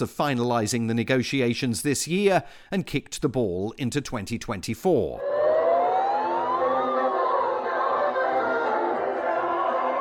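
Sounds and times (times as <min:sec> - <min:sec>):
speech: 0:00.0 - 0:05.4
siren rising and falling in pitch in San Francisco: 0:05.2 - 0:09.9.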